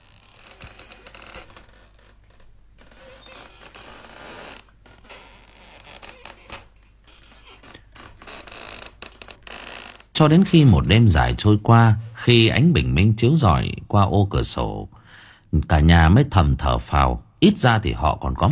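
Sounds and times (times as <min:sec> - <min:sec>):
hammock rope creaking as it tightens against a chinaberry tree trunk: 0:00.0 - 0:11.0
speech: 0:10.2 - 0:18.4.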